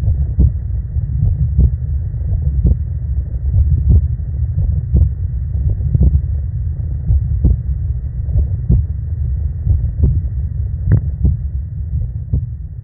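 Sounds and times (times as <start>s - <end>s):
human heartbeat: 0.0s - 2.9s, 3.5s - 6.3s, 7.0s - 9.0s, 9.6s - 10.3s, 10.9s - 12.6s
constant deep rumble: 0.0s - 12.8s.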